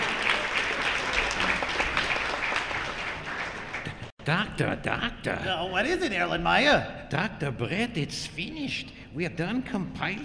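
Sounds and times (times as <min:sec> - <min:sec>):
group applauding: 0:00.0 - 0:04.1
speech: 0:04.2 - 0:10.2.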